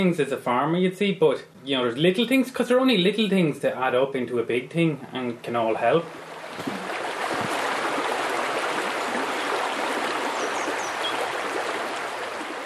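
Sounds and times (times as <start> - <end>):
speech: 0.0 - 6.9
River Ban tributary of the Slaney rushing past: 6.1 - 12.6.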